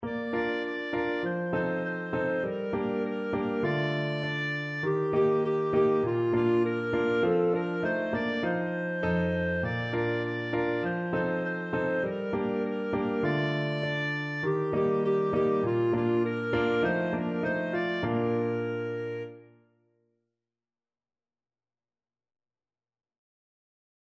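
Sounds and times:
clarinet: 0:00.0 - 0:19.7.

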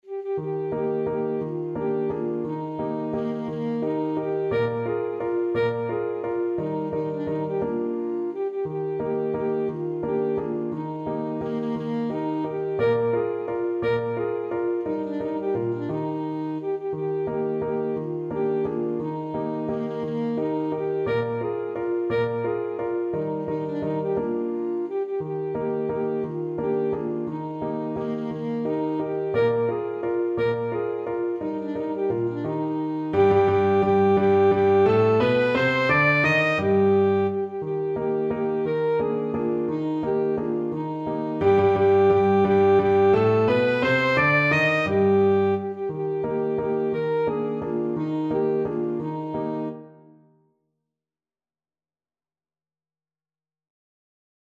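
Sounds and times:
alto saxophone playing a German dance: 0:00.0 - 0:50.1.

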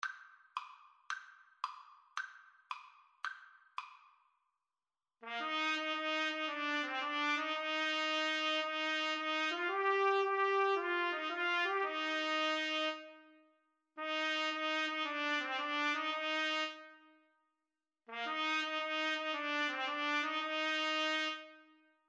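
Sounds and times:
trumpet melody: 0:05.2 - 0:13.4, 0:14.0 - 0:17.1, 0:18.1 - 0:21.8.

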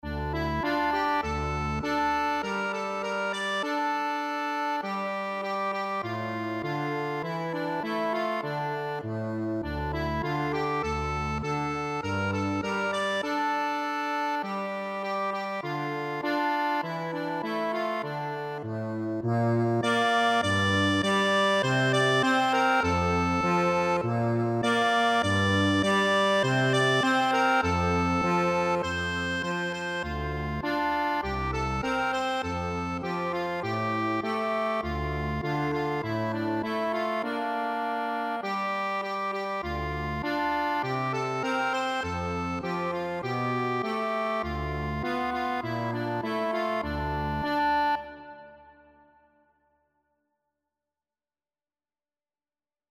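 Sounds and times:
accordion playing a national anthem: 0:00.0 - 0:49.0.

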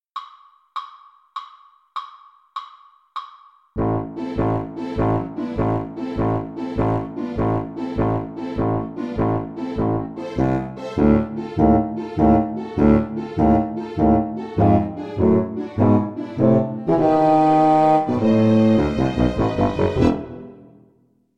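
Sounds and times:
oboe playing: 0:03.8 - 0:20.6.

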